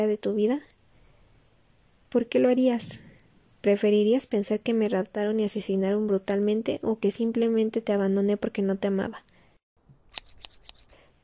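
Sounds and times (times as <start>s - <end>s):
speech: 0.0s - 0.8s, 2.1s - 9.4s
scissors snipping: 10.1s - 11.0s.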